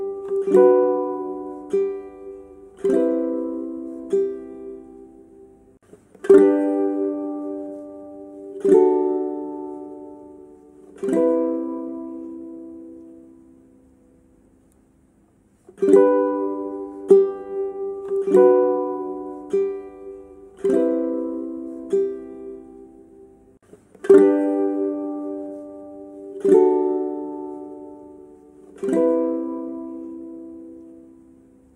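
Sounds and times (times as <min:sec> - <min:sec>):
ukulele strumming chords: 0:00.0 - 0:31.7.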